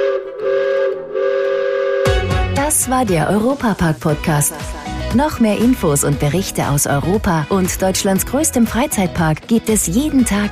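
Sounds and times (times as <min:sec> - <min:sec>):
amusement park panorama train whistle: 0:00.0 - 0:02.5
speech: 0:02.7 - 0:10.5.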